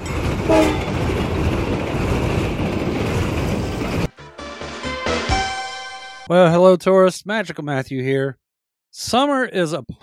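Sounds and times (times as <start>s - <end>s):
train rumbling on rails: 0.0s - 4.1s
horn-like tones: 0.5s - 0.9s
speech: 6.3s - 10.0s.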